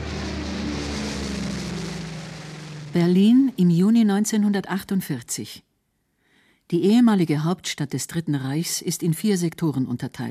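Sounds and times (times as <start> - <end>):
dull droning of engines in Berlin: 0.0 - 3.0
speech: 2.9 - 5.7, 6.7 - 10.3.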